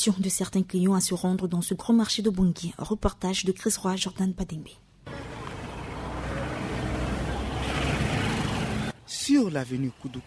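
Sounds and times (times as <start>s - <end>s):
speech: 0.0s - 4.9s, 9.2s - 10.2s
engines of cars and motorbikes on a market street in Bangui: 5.0s - 10.2s.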